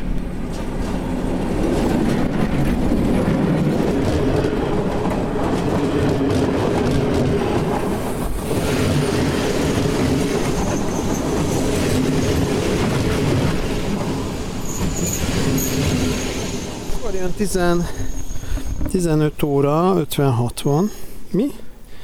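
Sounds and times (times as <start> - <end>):
rattling push-pull shuttle train in Hungary rumbling past on tracks: 0.0 - 19.9
faint metallic squeal: 14.6 - 18.9
speech: 17.4 - 18.0, 19.0 - 21.6.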